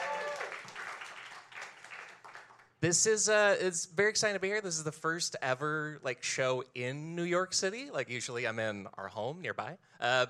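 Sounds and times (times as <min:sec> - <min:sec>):
whoop or whistle from the crowd: 0:00.0 - 0:00.6
live crowd applauding: 0:00.0 - 0:02.7
speech: 0:02.8 - 0:10.2.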